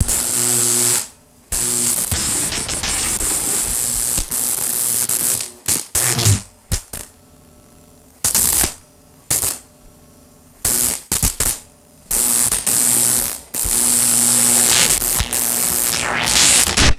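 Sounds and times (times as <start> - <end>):
buzzing electric zaps: 0.0 - 7.1, 8.2 - 9.6, 10.6 - 16.9
close-up electrical arcing: 1.6 - 6.5, 12.2 - 16.9.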